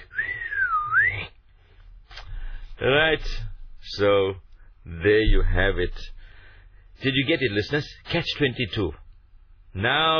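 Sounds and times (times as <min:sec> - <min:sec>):
admiring human whistle: 0:00.0 - 0:01.3
speech: 0:02.8 - 0:06.2, 0:07.0 - 0:09.0, 0:09.7 - 0:10.1.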